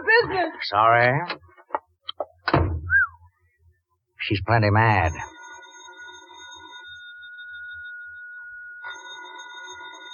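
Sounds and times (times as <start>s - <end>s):
speech: 0.2s - 1.5s, 4.2s - 5.4s
telephone ringing with electronic tones: 4.6s - 10.1s.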